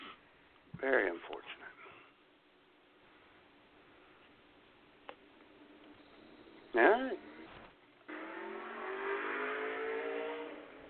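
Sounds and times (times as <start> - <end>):
speech: 0.8 - 1.7
Ski-Doo snowmobile engine passing by on a hiking trail by a lake: 7.2 - 10.8.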